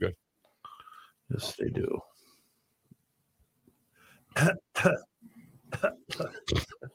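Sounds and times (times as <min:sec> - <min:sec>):
speech: 0:00.0 - 0:00.2, 0:01.3 - 0:02.1, 0:04.4 - 0:05.1
coughing and throat clearing: 0:04.3 - 0:06.9.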